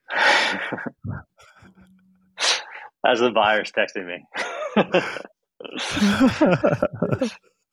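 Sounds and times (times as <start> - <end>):
deep breathing: 0.0 - 3.0
speech: 0.7 - 1.1, 3.0 - 7.5
laughter: 4.4 - 7.4.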